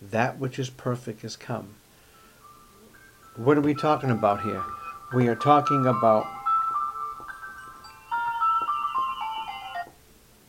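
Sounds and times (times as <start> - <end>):
speech: 0.1 - 1.8, 3.4 - 6.4
cell phone ringtone playing a short electronic melody: 2.2 - 10.0.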